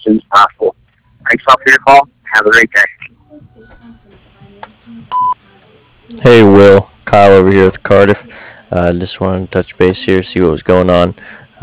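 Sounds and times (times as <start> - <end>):
speech: 1.5 - 3.0, 6.2 - 11.6
answering machine beep: 5.1 - 5.4.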